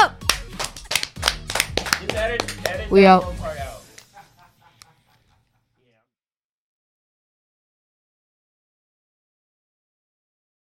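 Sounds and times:
hands clapping: 0.2s - 3.0s, 3.9s - 4.2s
laughter: 1.8s - 6.0s
speech: 2.2s - 3.4s.

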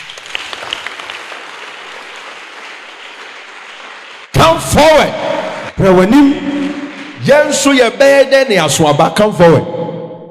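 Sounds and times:
audience clapping at a church service: 0.0s - 8.0s
speech: 4.5s - 6.6s, 7.2s - 9.8s.

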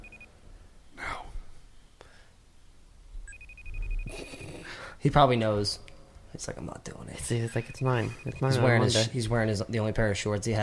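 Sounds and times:
telephone ringing with a high electronic tone: 0.0s - 0.3s, 3.3s - 4.6s, 7.5s - 9.0s
speech: 4.1s - 4.4s, 5.0s - 10.6s.

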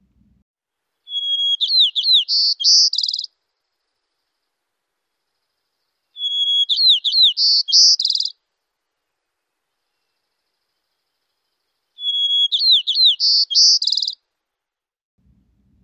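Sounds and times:
white-crowned sparrow singing: 1.0s - 4.0s, 5.3s - 8.4s, 9.1s - 14.2s.

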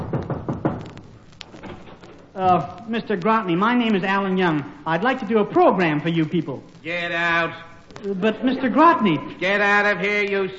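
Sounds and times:
knocking on an office door: 0.0s - 1.0s
quiet room noise: 0.0s - 10.5s
speech: 2.4s - 10.5s.

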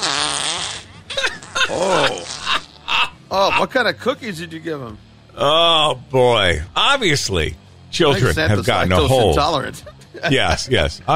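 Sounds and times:
novelty fart sound effect from smart speaker: 0.0s - 2.9s
laughter: 1.1s - 3.7s, 8.0s - 11.1s
speech: 1.7s - 2.3s, 3.6s - 11.1s.

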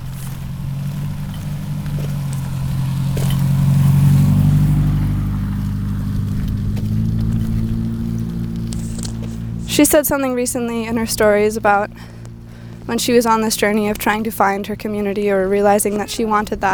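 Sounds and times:
car passing by: 0.0s - 16.7s
speech: 9.8s - 12.2s, 12.9s - 16.7s.

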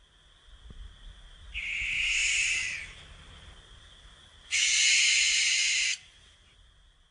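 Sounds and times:
barn owl screeching: 1.6s - 3.0s, 4.5s - 6.1s.

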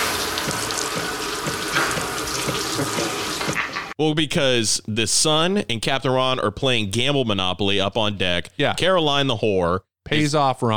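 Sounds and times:
shower water running: 0.0s - 4.0s
speech: 4.0s - 10.7s.

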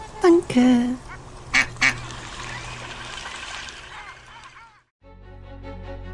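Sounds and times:
speech: 0.5s - 1.1s
ducks quacking while being fed bread: 1.0s - 2.6s, 3.8s - 4.8s.

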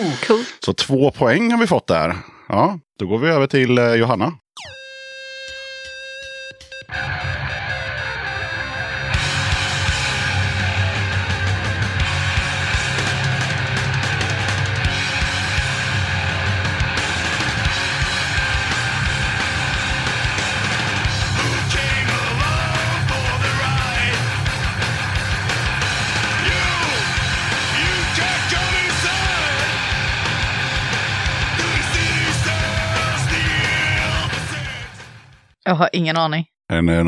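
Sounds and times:
speech: 0.0s - 4.8s, 6.9s - 7.4s, 35.7s - 37.0s
metal band playing a cover of a punk rock song: 6.9s - 35.4s
harsh shouted vocals: 21.4s - 24.3s, 26.2s - 29.9s, 31.4s - 35.0s.

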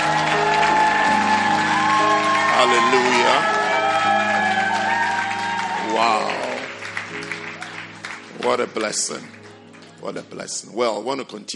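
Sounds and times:
shouts and whoops: 0.0s - 6.7s
church audience clapping and cheering: 0.0s - 10.6s
speech: 8.4s - 9.4s, 10.0s - 11.5s.

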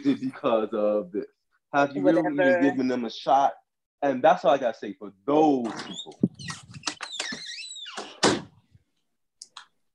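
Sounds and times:
speech: 0.0s - 6.6s
creaky scraping door swinging shut with a solid thud: 5.6s - 8.6s.

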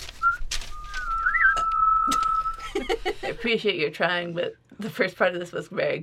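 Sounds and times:
soft rustles: 0.0s - 3.2s
person whistling a thin steady tone: 0.2s - 2.6s
laughter: 2.1s - 3.5s
speech: 2.9s - 6.0s.

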